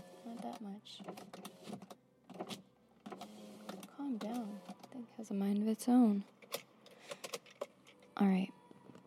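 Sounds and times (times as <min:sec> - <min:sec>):
car power window motor whirring as the glass lowers: 0:00.0 - 0:04.8
speech: 0:00.4 - 0:01.9, 0:05.2 - 0:06.3, 0:08.2 - 0:08.5.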